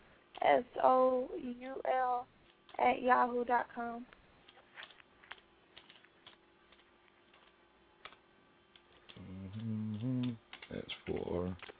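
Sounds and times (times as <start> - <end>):
steady low humming tone: 0.0 - 11.7
speech: 0.4 - 4.2, 10.7 - 11.7
typing on a computer keyboard: 4.4 - 8.2, 10.5 - 11.7.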